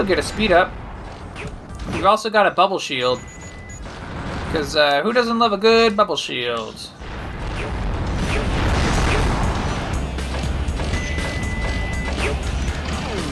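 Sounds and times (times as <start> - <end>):
speech: 0.0 - 0.8, 1.4 - 3.4, 4.5 - 7.0
anvil platform smashing and clanking in a video game: 0.0 - 2.3, 3.2 - 4.9, 7.0 - 13.2.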